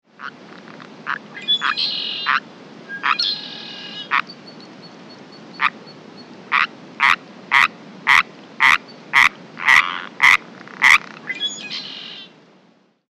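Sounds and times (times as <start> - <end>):
faint low background noise: 0.1 - 13.0
Sierran treefrog giving raspy croaks in daylight: 1.1 - 2.4, 3.0 - 4.4, 5.5 - 5.8, 6.5 - 11.1.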